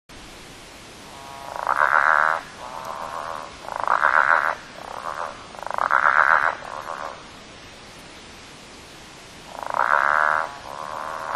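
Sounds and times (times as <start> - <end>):
Southern bell frogs Litoria raniformis giving drawn-out growling croaks at Lily Lake: 1.1 - 7.4, 9.5 - 11.3.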